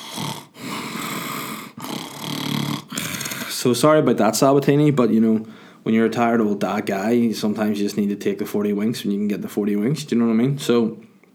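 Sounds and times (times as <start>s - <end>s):
person loudly imitating snoring: 0.0s - 3.6s
speech: 3.6s - 11.1s.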